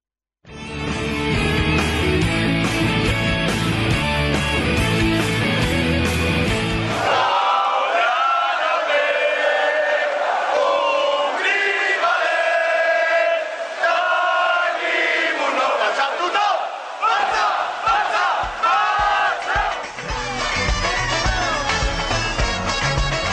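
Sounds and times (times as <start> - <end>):
dense roaring musical accompaniment: 0.5 - 7.3, 18.3 - 23.3
large crowd singing a football club anthem in unison: 6.8 - 21.8.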